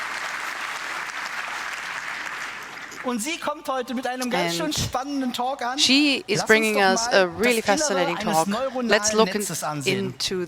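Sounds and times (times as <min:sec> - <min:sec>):
audience applauding at the introduction of a conference talk: 0:00.0 - 0:03.4
speech: 0:03.0 - 0:10.4.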